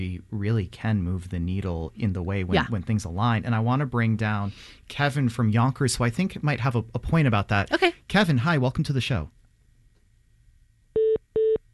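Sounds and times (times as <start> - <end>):
speech: 0.0 - 9.4
faint low hum: 0.0 - 11.7
telephone line tone short steady beeps: 11.0 - 11.6.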